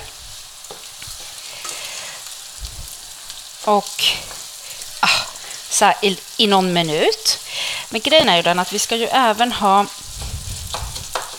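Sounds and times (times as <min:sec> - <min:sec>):
spoon scraping a pan while stirring: 0:00.0 - 0:02.4, 0:10.2 - 0:11.3
arborio rice and onion frying in a hot pan: 0:00.0 - 0:11.3
speech: 0:03.7 - 0:04.4, 0:05.0 - 0:10.0
spoon knocking against a pan: 0:10.7 - 0:11.3.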